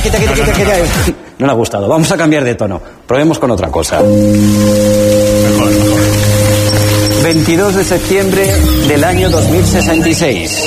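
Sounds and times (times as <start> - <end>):
speech: 0.1 - 6.2, 7.2 - 10.6
low humming drone: 4.0 - 10.2
persistent rain falling: 4.1 - 10.6.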